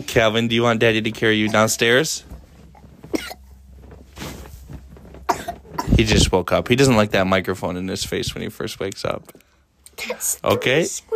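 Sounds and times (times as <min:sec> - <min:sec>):
speech: 0:00.0 - 0:02.4, 0:06.0 - 0:09.4, 0:10.0 - 0:11.1
young child coughing: 0:01.4 - 0:01.9, 0:03.1 - 0:03.5, 0:05.2 - 0:06.0.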